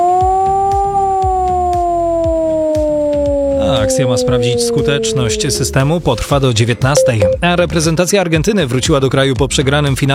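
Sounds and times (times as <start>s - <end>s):
air raid warning siren wailing: 0.0s - 6.4s
speech: 3.9s - 10.1s.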